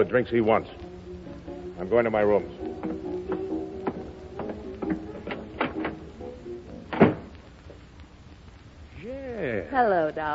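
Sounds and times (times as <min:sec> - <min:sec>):
speech: 0:00.0 - 0:00.9, 0:01.8 - 0:02.7, 0:09.7 - 0:10.3
door thump: 0:02.8 - 0:06.0, 0:06.9 - 0:07.4
door creak: 0:06.9 - 0:07.4.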